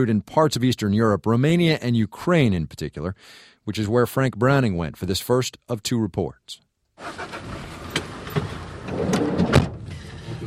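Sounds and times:
speech: 0.0s - 7.5s
car driving through potholed back alleys in Bucharest: 7.0s - 10.4s.

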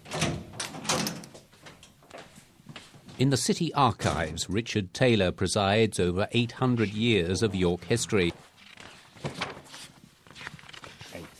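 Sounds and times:
door being unlocked: 0.0s - 1.4s
speech: 3.2s - 8.4s.

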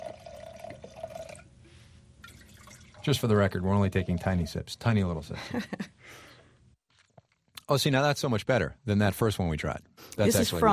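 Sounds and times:
Fumé Blanc wine from Napa Valley pouring from a bottle into a glass: 0.0s - 1.6s, 2.2s - 4.5s
speech: 3.1s - 5.9s, 7.7s - 10.7s.

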